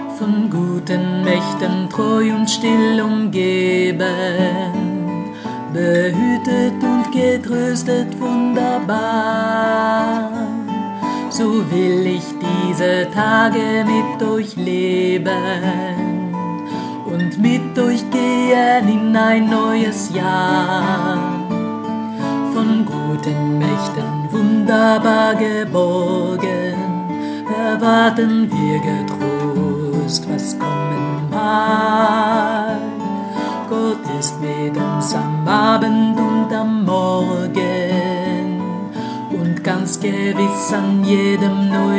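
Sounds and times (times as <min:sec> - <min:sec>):
tenor singing: 0:00.2 - 0:41.9.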